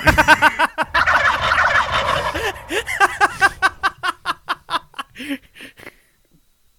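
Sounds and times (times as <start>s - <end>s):
laughter: 0.0s - 5.5s
turkey gobbling: 0.8s - 3.8s
turkey clucking: 0.9s - 3.3s.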